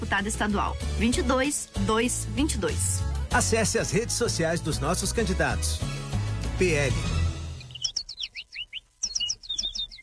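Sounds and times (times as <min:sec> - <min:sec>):
speech: 0:00.1 - 0:07.2
small bird chirping: 0:07.0 - 0:10.0.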